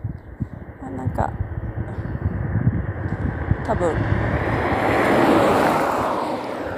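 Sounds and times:
speech: 0:00.9 - 0:02.1, 0:03.1 - 0:04.4
car full of people passing on a road at a junction: 0:01.4 - 0:06.7.

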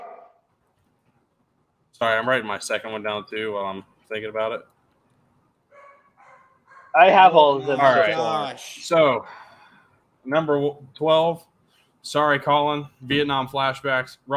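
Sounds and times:
dog barking: 0:00.0 - 0:00.4, 0:05.7 - 0:07.2
speech: 0:02.0 - 0:04.8, 0:06.9 - 0:09.4, 0:10.2 - 0:14.3.

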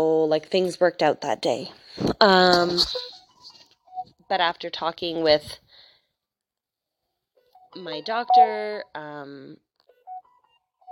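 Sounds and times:
speech: 0:00.0 - 0:03.1, 0:04.3 - 0:05.6, 0:07.7 - 0:09.7
phone beeping: 0:07.4 - 0:09.0, 0:09.9 - 0:10.9.

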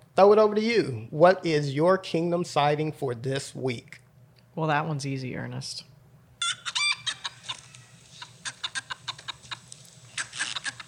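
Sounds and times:
speech: 0:00.2 - 0:04.0, 0:04.6 - 0:05.9
flock of ISA Brown laying hens clucking: 0:06.4 - 0:10.8.

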